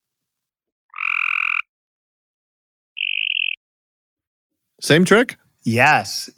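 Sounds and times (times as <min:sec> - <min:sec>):
mockingbird in North Carolina imitating Cope's gray tree frog calls: 0:00.9 - 0:01.7, 0:03.0 - 0:03.6
speech: 0:04.8 - 0:06.3.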